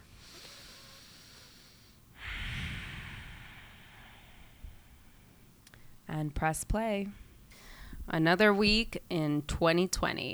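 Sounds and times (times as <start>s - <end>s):
deep breath: 0.0s - 6.1s, 7.1s - 8.1s
faint steady hiss: 0.0s - 10.3s
speech: 6.2s - 7.2s, 8.1s - 10.3s.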